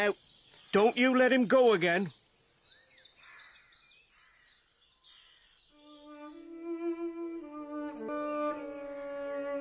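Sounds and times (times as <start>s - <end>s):
speech: 0.0s - 2.2s
nightingale singing trills and whistled phrases: 0.0s - 9.5s
sustained bowed string tone: 5.8s - 9.5s.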